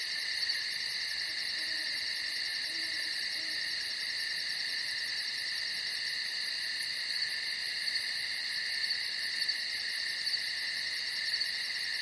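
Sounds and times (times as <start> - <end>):
crickets trilling chorus in a night forest: 0.0 - 11.9.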